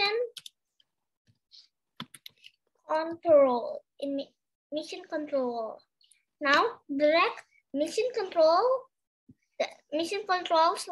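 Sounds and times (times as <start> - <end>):
typing on a computer keyboard: 0.2 - 0.6, 1.9 - 2.6
speech: 2.9 - 8.8, 9.6 - 10.9.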